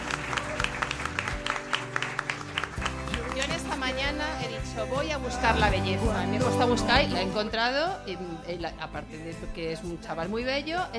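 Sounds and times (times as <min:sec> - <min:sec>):
small crowd clapping for a guest singer: 0:00.0 - 0:04.2
speech: 0:04.0 - 0:10.9.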